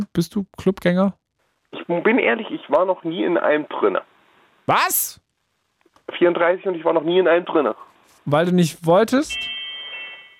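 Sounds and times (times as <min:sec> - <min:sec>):
speech: 0:00.1 - 0:01.2, 0:01.9 - 0:04.1, 0:04.7 - 0:05.2, 0:06.1 - 0:09.6
mobile phone notification tone, bright electronic chime: 0:09.3 - 0:10.3.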